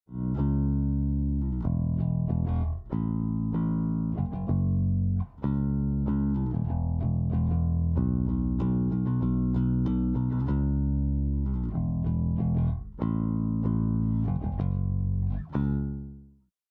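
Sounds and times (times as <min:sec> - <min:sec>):
bass: 0:00.0 - 0:16.6.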